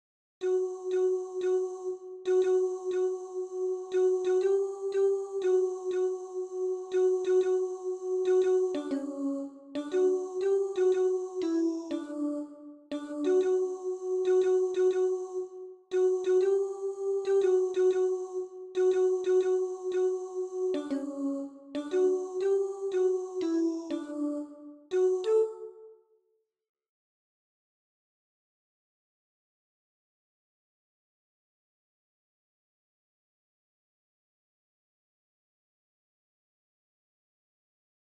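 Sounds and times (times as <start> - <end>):
song, alternate version: 0.4 - 25.8.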